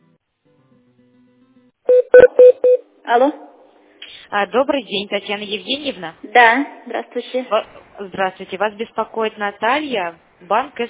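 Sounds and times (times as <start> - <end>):
touch-tone keypad dialing beeps on a phone line: 1.9 - 2.8
speech: 3.1 - 3.4, 4.3 - 10.8.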